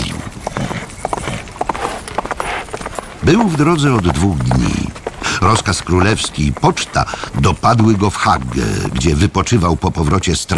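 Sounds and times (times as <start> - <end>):
horse hoofbeats of a courier urging his mount on: 0.0 - 10.5
speech: 3.2 - 10.5.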